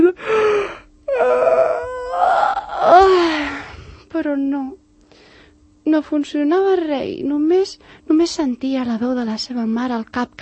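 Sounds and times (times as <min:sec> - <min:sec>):
voice imitating an enormous exaggerated yawn: 0:00.2 - 0:04.0
speech: 0:06.0 - 0:10.3.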